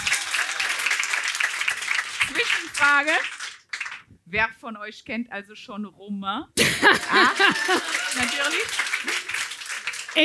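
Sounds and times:
audience clapping: 0.0 - 4.1, 6.9 - 10.2
speech: 2.4 - 3.4, 4.3 - 9.2
laughter: 6.6 - 9.5.

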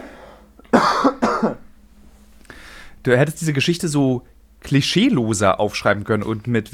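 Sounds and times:
person coughing to clear saliva from the throat: 0.6 - 1.7
speech: 3.0 - 6.7.

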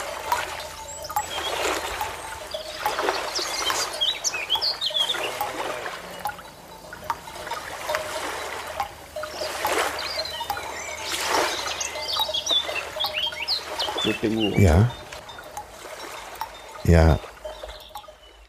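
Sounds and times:
birds chirping: 0.0 - 18.4
speech: 14.2 - 15.0, 16.9 - 17.3.

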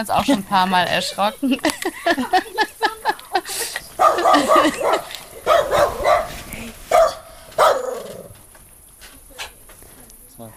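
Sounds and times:
speech: 0.0 - 2.7, 3.5 - 5.9
laughter: 0.1 - 5.8
dog barking at a fox with yips and heavier barks: 4.0 - 8.3.

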